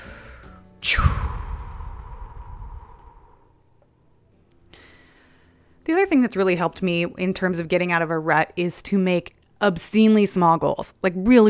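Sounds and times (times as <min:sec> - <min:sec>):
single deep heavy breath with rushing exhale: 0:00.0 - 0:03.6, 0:04.7 - 0:05.8
speech: 0:00.8 - 0:01.2, 0:05.9 - 0:11.4.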